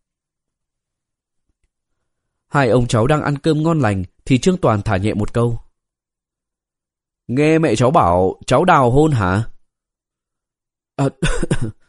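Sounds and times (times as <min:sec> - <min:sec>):
speech: 0:02.5 - 0:05.6, 0:07.3 - 0:09.5, 0:11.0 - 0:11.8
young man coughing after choking on food: 0:11.0 - 0:11.8.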